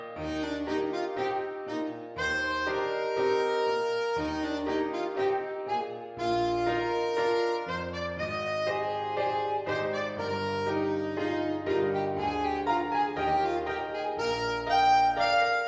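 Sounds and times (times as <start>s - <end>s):
alto saxophone: 0.2s - 15.6s.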